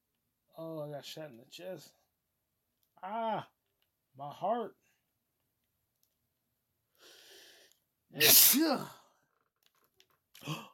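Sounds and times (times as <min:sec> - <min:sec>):
speech: 0:00.6 - 0:02.0, 0:03.0 - 0:03.6, 0:04.2 - 0:04.8, 0:08.1 - 0:09.0, 0:10.4 - 0:10.7
sneeze: 0:08.2 - 0:09.0.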